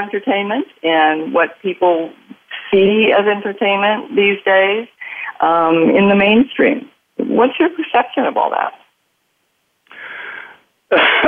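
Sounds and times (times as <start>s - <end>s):
speech: 0.0s - 8.8s, 10.9s - 11.2s
raspy intake of breath: 9.9s - 10.6s
harsh cough: 10.9s - 11.2s.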